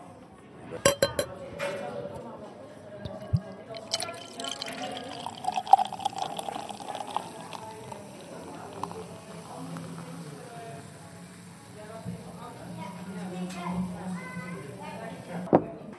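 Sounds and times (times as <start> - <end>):
faint voices murmuring: 0.0 - 15.9
glass clinking: 0.8 - 1.4, 3.1 - 9.0
beer pouring into a glass with bubbling fizz: 3.0 - 13.3.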